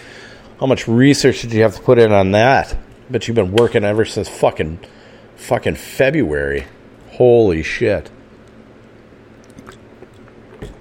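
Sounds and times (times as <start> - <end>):
speech: 0.6 - 8.2
person sipping and swallowing water: 9.3 - 10.7.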